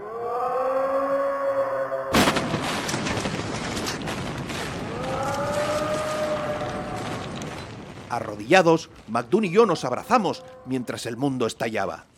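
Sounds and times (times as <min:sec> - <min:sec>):
siren wailing: 0:00.0 - 0:02.2, 0:04.8 - 0:07.6
stone tower collapsing with crashing rumble: 0:02.2 - 0:10.0
speech: 0:08.1 - 0:12.1.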